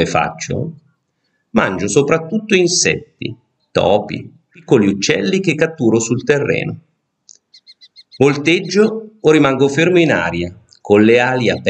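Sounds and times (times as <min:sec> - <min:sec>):
speech: 0:00.0 - 0:00.8, 0:01.5 - 0:06.9, 0:08.2 - 0:11.6
common kestrel calling: 0:04.6 - 0:11.6.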